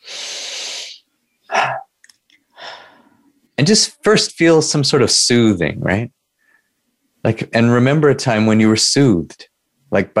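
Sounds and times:
deep breath with long airy inhale and strong breathy exhale: 0:00.0 - 0:01.0, 0:02.5 - 0:03.3, 0:06.4 - 0:06.8
speech: 0:03.6 - 0:06.2, 0:07.2 - 0:10.1.

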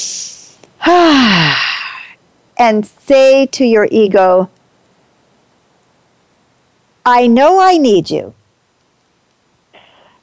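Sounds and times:
person taking a deep breath and sighing: 0:00.0 - 0:02.1, 0:09.8 - 0:10.2
speech: 0:02.6 - 0:04.6, 0:07.1 - 0:08.4.

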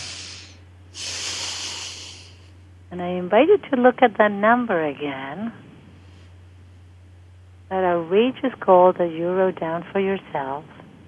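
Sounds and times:
deep breath: 0:00.0 - 0:02.6
low constant hum: 0:00.0 - 0:11.0
speech: 0:02.9 - 0:05.7, 0:07.7 - 0:10.8.

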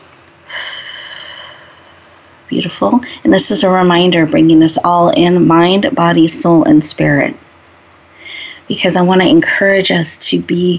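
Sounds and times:
deep breath during a guided breathing exercise: 0:00.4 - 0:02.3
speech: 0:02.5 - 0:07.4, 0:08.7 - 0:10.7.

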